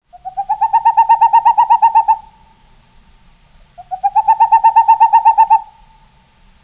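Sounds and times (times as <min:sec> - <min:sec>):
Boreal owl hooting: 0:00.1 - 0:02.6, 0:03.7 - 0:06.2.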